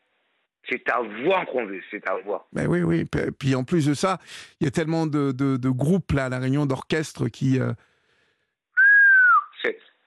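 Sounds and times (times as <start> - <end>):
speech: 0.7 - 7.9, 9.6 - 9.8
person whistling: 8.8 - 9.6.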